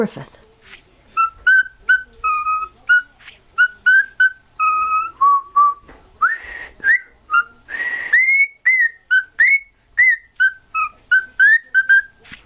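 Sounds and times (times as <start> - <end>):
cockatiel whistled song: 1.2 - 12.4.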